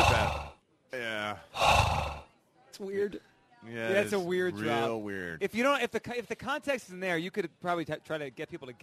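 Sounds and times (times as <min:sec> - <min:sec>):
loud heavy breathing radio drop: 0:00.0 - 0:00.6, 0:01.4 - 0:02.3
short voiced gasping breath: 0:01.5 - 0:02.3
speech: 0:02.8 - 0:08.8.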